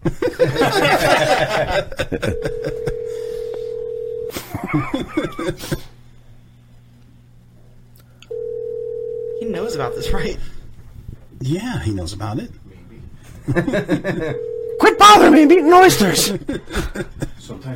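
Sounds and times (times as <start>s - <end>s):
snickering laughter: 0.0s - 3.2s, 4.3s - 5.9s, 16.2s - 17.4s
speech: 0.7s - 2.7s, 5.4s - 5.9s, 12.0s - 12.7s, 13.5s - 17.7s
telephone dialing and ringing tones: 2.4s - 4.3s, 8.3s - 10.2s, 14.3s - 15.1s.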